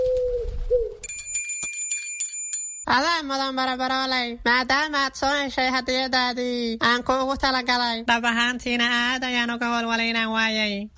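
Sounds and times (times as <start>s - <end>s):
pigeon cooing: 0.0s - 1.0s
small bell tied to a pigeon's leg ringing: 1.0s - 2.9s
speech: 2.9s - 10.9s.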